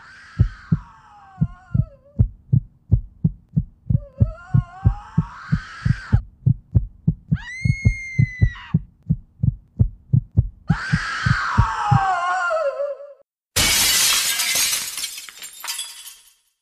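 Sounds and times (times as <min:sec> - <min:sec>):
steady low heartbeat thumps: 0:00.4 - 0:12.1
loud glass shattering with scattering debris: 0:13.6 - 0:16.5.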